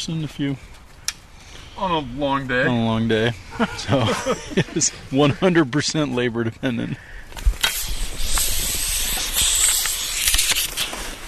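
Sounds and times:
speech: 0.0 - 0.8, 1.8 - 7.5
laughter: 2.6 - 5.7
air rushing through a maple sap vacuum line in a maple forest: 7.3 - 11.2.

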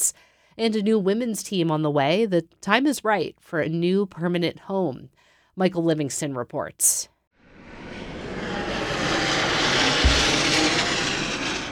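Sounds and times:
speech: 0.6 - 7.1
airplane flying overhead preparing to land at Portland Jetport in Maine: 7.4 - 11.7.

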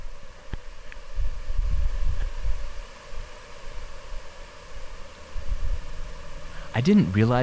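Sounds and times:
swarming brine flies buzzing: 0.0 - 7.4
gusts of wind rumbling across the microphone: 1.0 - 3.3, 5.3 - 6.6
speech: 6.8 - 7.4.

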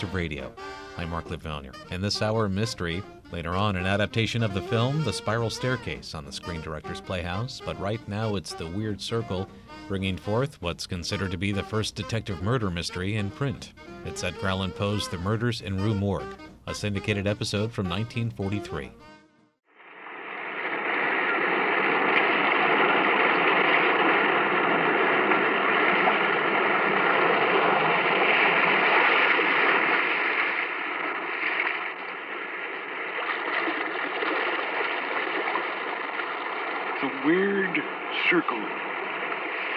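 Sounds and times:
speech: 0.0 - 19.1, 37.2 - 38.8
restless sea waves surging: 19.8 - 39.7.

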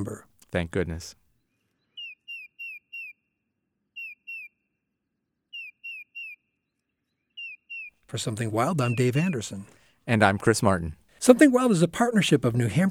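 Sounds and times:
speech: 0.0 - 1.2, 8.1 - 12.9
bird singing short whistled notes in the woods in fall: 1.4 - 4.8, 5.5 - 8.0, 8.6 - 9.6.

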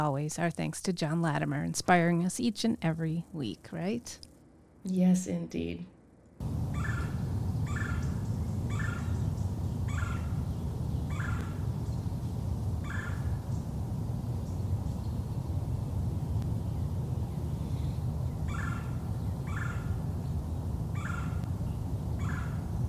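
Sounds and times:
speech: 0.0 - 6.6
low rumbling background noise: 0.0 - 22.8
Red-bellied Woodpecker calls in the Twin Cities area: 6.5 - 13.8, 17.6 - 20.1, 20.8 - 22.7.

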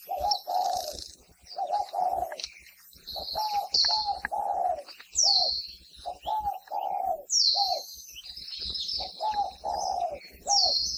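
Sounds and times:
spotted dove cooing: 0.0 - 8.0, 8.6 - 10.9
small birds chirping and tweeting outdoors: 0.0 - 10.9.

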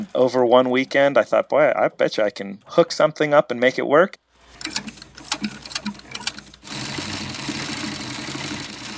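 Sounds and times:
industrial-strength sewing machine stitching leather in a homemade contraption: 0.0 - 1.4, 4.4 - 8.9
speech: 0.0 - 5.6.

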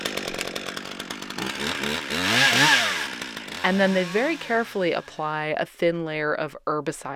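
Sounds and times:
chainsaw cutting pear trees in Johnson County: 0.0 - 5.6
speech: 1.4 - 2.8, 3.6 - 7.1.

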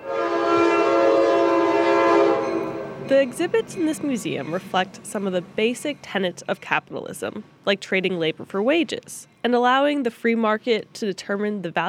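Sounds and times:
train whistle blowing as a train passes along the Oakland waterfront: 0.0 - 3.0
speech: 3.1 - 11.8.

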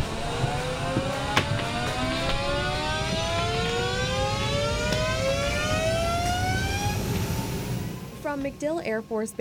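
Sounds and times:
aircraft engines starting up: 0.0 - 9.3
speech: 8.4 - 9.3.

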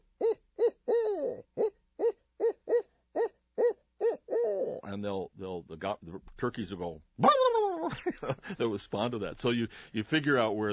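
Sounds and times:
person imitating a barred owl hoot to locate roosting turkeys: 0.2 - 4.9, 7.2 - 7.9
speech: 5.0 - 10.7.

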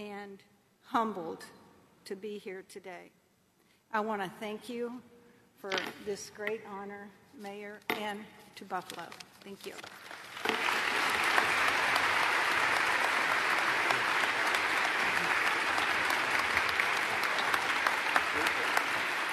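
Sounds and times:
speech: 0.4 - 3.2, 3.9 - 10.6
large audience applause at a key-to-the-city ceremony in Buffalo: 10.2 - 19.3.

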